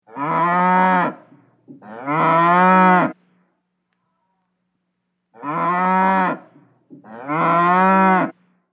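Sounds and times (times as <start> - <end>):
cow mooing: 0.1 - 1.2, 1.8 - 3.2, 5.4 - 8.4.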